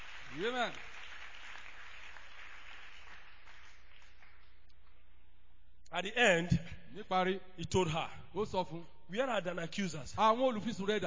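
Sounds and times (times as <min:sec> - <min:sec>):
audience clapping: 0:00.0 - 0:05.0
speech: 0:00.4 - 0:00.9, 0:05.9 - 0:11.0.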